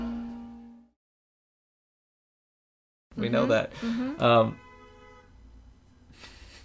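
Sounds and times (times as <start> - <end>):
speech: 3.2 - 4.6
bus horn honking: 4.2 - 5.4.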